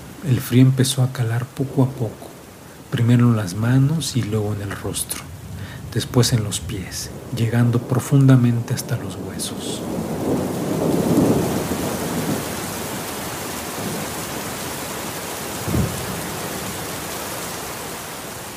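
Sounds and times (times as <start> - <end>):
heavy rain: 0.0 - 18.5
speech: 0.2 - 2.3, 2.9 - 5.3, 6.0 - 10.4
low thunder rumbling: 3.5 - 14.7, 15.5 - 16.9.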